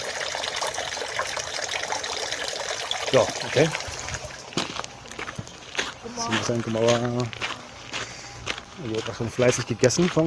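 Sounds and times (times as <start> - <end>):
water trickling in a shrine purification basin: 0.0 - 7.2
speech: 3.1 - 3.9, 6.2 - 7.4, 8.8 - 10.2.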